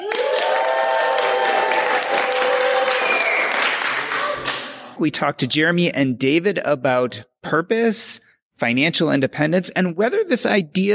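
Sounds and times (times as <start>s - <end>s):
loud cheers and whoops from a live audience: 0.0s - 4.6s
live audience applause at an event: 0.0s - 4.9s
speech: 5.0s - 10.9s.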